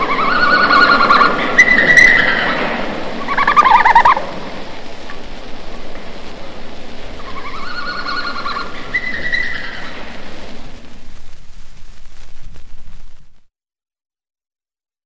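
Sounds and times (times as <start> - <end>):
red panda making whining and tonal squeals: 0.0 - 4.3, 7.3 - 10.0
low background noise: 0.0 - 13.5.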